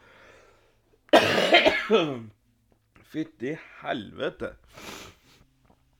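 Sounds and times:
person coughing harshly: 0:01.1 - 0:02.2
speech: 0:01.9 - 0:02.4, 0:03.1 - 0:04.9.

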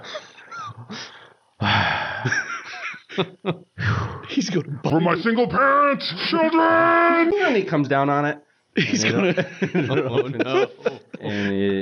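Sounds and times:
laughter: 0:00.0 - 0:01.1, 0:02.2 - 0:03.6, 0:08.8 - 0:11.8
voice imitating heavy labored breathing with raspy huffs and panting: 0:00.8 - 0:02.3, 0:03.8 - 0:04.8
speech: 0:03.2 - 0:03.7, 0:04.3 - 0:11.8.

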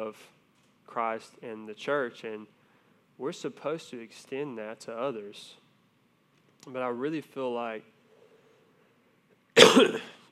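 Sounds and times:
speech: 0:00.0 - 0:02.6, 0:03.2 - 0:05.6, 0:06.6 - 0:07.9
loud harsh cough: 0:09.6 - 0:10.3.

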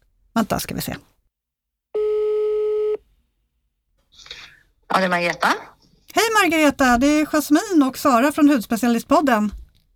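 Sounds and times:
speech: 0:00.4 - 0:01.1, 0:04.9 - 0:09.6
telephone ringback tone of an outgoing call to a dermatologist: 0:02.0 - 0:03.0.

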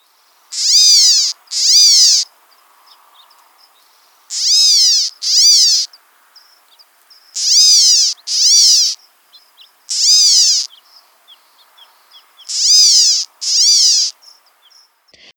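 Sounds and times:
California gnatcatcher giving harsh nasal cat-like mewing calls: 0:00.5 - 0:02.3, 0:04.3 - 0:05.9, 0:07.4 - 0:09.0, 0:09.9 - 0:10.7, 0:12.5 - 0:14.2.

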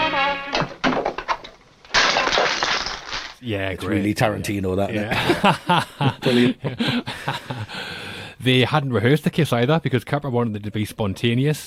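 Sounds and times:
vinyl record being smashed: 0:00.5 - 0:03.4
vinyl record fragments scattering and rattling: 0:00.6 - 0:03.4
speech: 0:03.4 - 0:11.6
laughter: 0:04.9 - 0:07.9.

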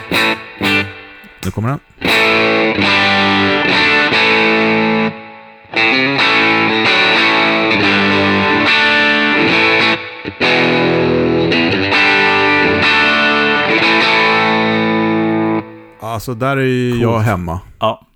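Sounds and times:
electric guitar playing overdriven chords and riffs through an Elec overdrive pedal: 0:00.0 - 0:16.0
speech: 0:01.5 - 0:03.9, 0:16.2 - 0:18.0.

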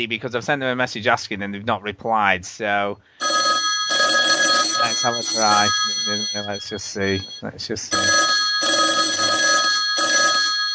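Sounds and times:
speech: 0:00.0 - 0:03.5, 0:04.8 - 0:08.3
telephone ringing with electronic trill: 0:03.2 - 0:10.7.

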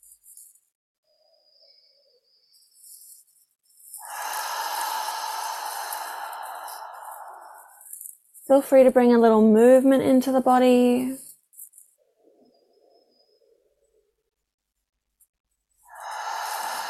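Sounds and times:
deep breathing in through the nose and out through the mouth: 0:03.8 - 0:08.2, 0:15.8 - 0:16.8
speech: 0:08.5 - 0:11.2.

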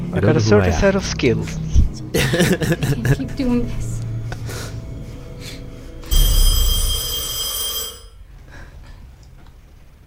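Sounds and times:
speech: 0:00.1 - 0:03.9
laughter: 0:02.1 - 0:03.6
telephone bell ringing: 0:06.0 - 0:08.2.

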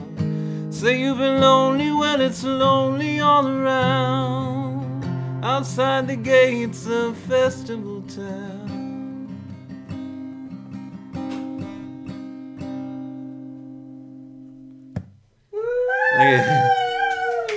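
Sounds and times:
slightly out of tune strummed guitar chords: 0:00.0 - 0:15.1
speech: 0:00.8 - 0:04.8, 0:05.4 - 0:08.7
dogs howling: 0:15.6 - 0:17.5.

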